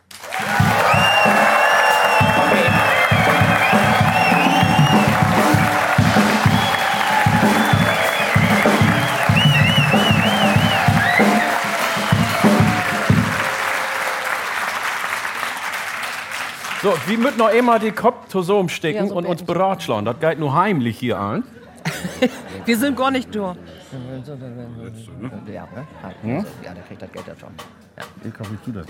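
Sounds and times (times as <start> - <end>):
cheering: 0.0 - 17.8
audience clapping: 0.0 - 18.1
whistling: 0.5 - 13.4
speech: 16.9 - 21.6, 22.2 - 28.8
laughter: 21.7 - 23.0.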